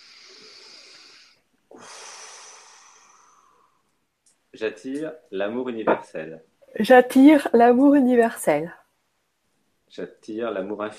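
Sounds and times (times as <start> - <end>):
deep breath drawn in during guided meditation: 0.0 - 3.9
speech: 4.6 - 8.8, 9.9 - 10.9.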